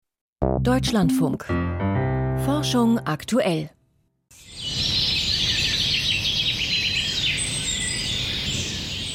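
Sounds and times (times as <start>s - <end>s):
speech: 0.4s - 1.9s, 2.5s - 3.8s
songbirds chirping and trilling in a chorus: 4.4s - 9.1s.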